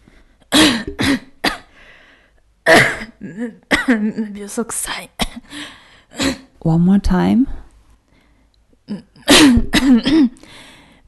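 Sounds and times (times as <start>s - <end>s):
person coughing while acting out feeling ill: 0.5s - 1.7s, 2.6s - 4.1s, 8.9s - 10.4s
speech: 3.2s - 7.6s, 8.9s - 11.0s.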